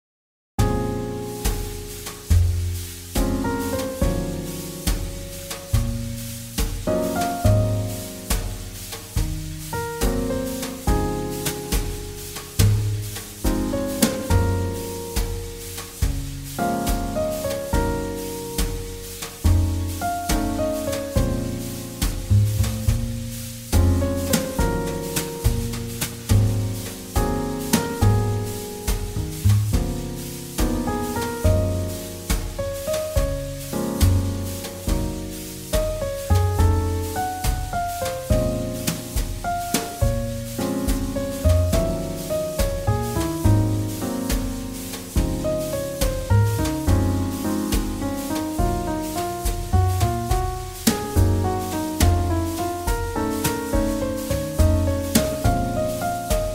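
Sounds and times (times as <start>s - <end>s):
jazz ballad: 0.6s - 56.5s.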